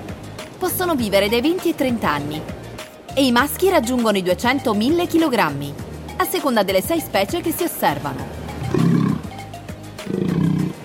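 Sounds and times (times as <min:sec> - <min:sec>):
speech: 0:00.6 - 0:02.6, 0:03.2 - 0:08.4
sea lion roaring call: 0:08.2 - 0:09.4, 0:10.0 - 0:10.8.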